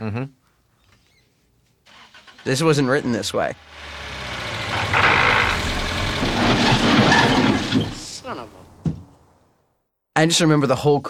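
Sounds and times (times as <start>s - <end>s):
speech: 0.0s - 0.4s, 2.4s - 4.0s, 10.2s - 11.0s
car engine rumbling then sputtering and stalling: 1.9s - 9.4s.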